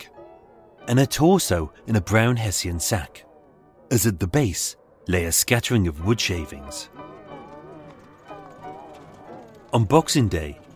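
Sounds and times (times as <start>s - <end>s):
speech: 0.9s - 3.3s, 3.9s - 7.1s, 9.7s - 10.6s
hooves of a horse drawing a carriage bus clip-clopping: 6.9s - 10.7s.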